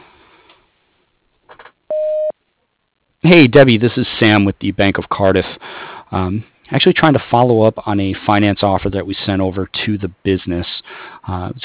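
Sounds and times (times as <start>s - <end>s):
voicemail beep tone: 1.9s - 2.4s
speech: 3.2s - 11.6s.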